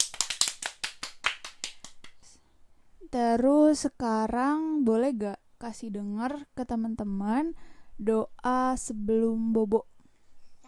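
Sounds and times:
children clapping hands: 0.0 - 2.2
speech: 3.1 - 9.9.

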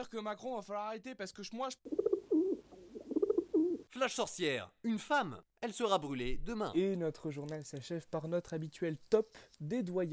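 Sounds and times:
speech: 0.0 - 2.1, 3.9 - 10.1
pigeon cooing: 1.9 - 3.9.

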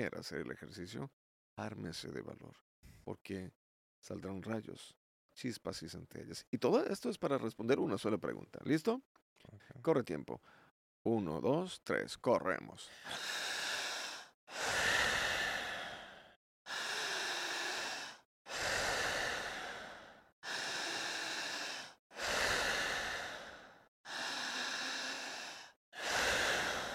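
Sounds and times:
speech: 0.0 - 13.6
forceful rapid breaths during a breathing exercise: 12.9 - 26.9.

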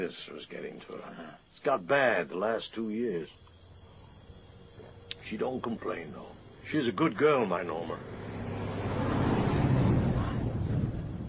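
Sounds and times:
speech: 0.0 - 3.4, 5.2 - 8.2
big truck passing on a road: 6.1 - 11.2.

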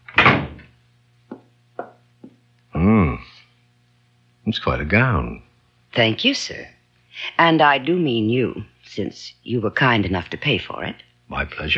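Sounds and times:
office door pushed shut with a solid thud: 0.0 - 0.7
speech: 4.5 - 11.7.

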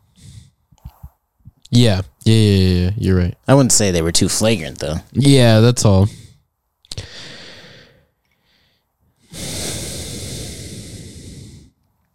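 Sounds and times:
breathing straight into a microphone: 0.0 - 1.2, 6.0 - 11.9
speech: 1.7 - 6.2.

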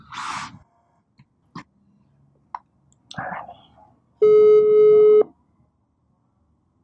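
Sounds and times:
phone ringback tone while calling: 4.2 - 5.3.

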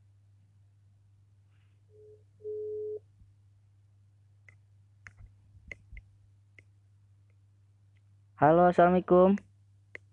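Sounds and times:
telephone call tone signaling an unreachable number: 2.0 - 3.0
speech: 8.4 - 9.5.

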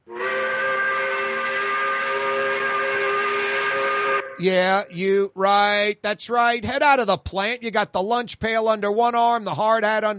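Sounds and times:
five o'clock factory whistle blowing: 0.0 - 4.6
speech: 4.4 - 10.1.

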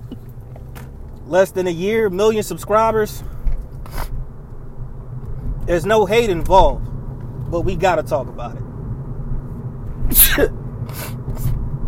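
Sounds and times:
speech: 1.3 - 4.0, 5.7 - 6.9, 7.5 - 8.6, 10.4 - 10.6
quiet quick sniffs: 3.8 - 4.2, 10.1 - 11.6
sharp sneeze: 10.1 - 11.5.

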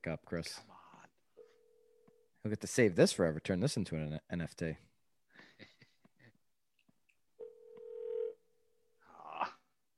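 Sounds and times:
speech: 0.0 - 0.7, 2.4 - 4.9
ringback tone of an unanswered phone call: 7.4 - 8.4.

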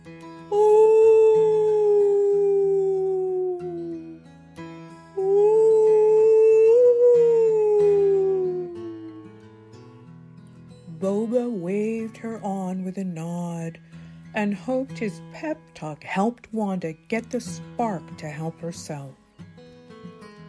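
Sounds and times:
whale song: 0.5 - 4.3, 5.2 - 9.5
speech: 14.5 - 19.2.

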